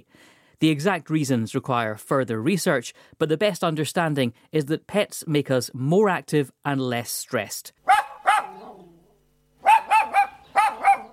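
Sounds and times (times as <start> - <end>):
speech: 0.6 - 7.8
small dog yapping with high-pitched barks: 7.8 - 9.0, 9.6 - 11.1.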